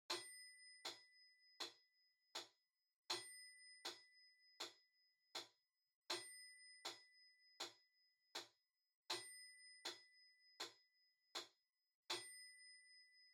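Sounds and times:
far metronome bell: 0:00.1 - 0:01.8, 0:03.1 - 0:04.8, 0:06.1 - 0:07.9, 0:09.1 - 0:10.9, 0:12.1 - 0:13.3.

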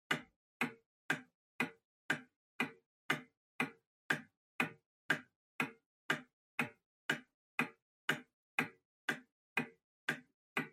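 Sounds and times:
pendulum clock hardware ticking: 0:00.1 - 0:10.7.

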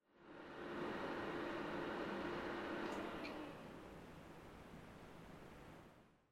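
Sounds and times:
PC operating noise during a forced shutdown: 0:00.2 - 0:04.0.

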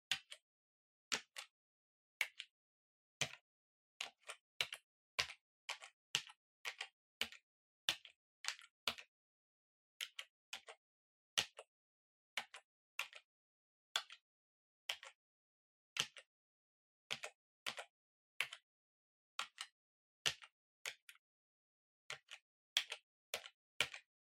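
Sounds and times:
distant gentle PC keyboard: 0:00.1 - 0:00.5, 0:01.2 - 0:01.6, 0:02.2 - 0:02.6, 0:03.2 - 0:03.4, 0:04.0 - 0:09.1, 0:10.0 - 0:10.8, 0:12.4 - 0:13.3, 0:14.9 - 0:15.2, 0:16.0 - 0:16.3, 0:17.1 - 0:18.7, 0:19.4 - 0:21.2, 0:22.1 - 0:24.1.

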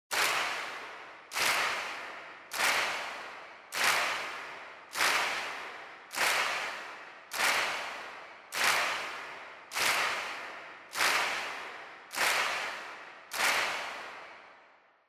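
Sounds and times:
handclap: 0:00.1 - 0:14.9.

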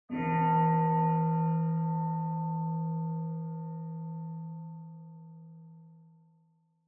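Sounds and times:
distant high bonsho temple bell: 0:00.1 - 0:06.5.

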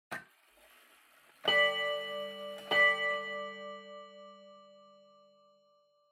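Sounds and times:
pendulum clock chime: 0:01.4 - 0:06.0.

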